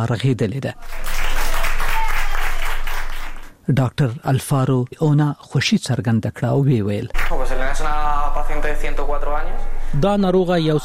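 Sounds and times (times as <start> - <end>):
speech: 0.0 - 1.1, 3.7 - 10.8
doctors and nurses applauding a recovered elderly patient: 0.8 - 3.5, 7.2 - 7.6.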